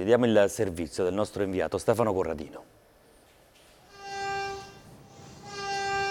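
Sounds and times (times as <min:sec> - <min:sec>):
speech: 0:00.0 - 0:02.8
low hum: 0:00.0 - 0:06.0
train whistle blasts: 0:03.9 - 0:06.0.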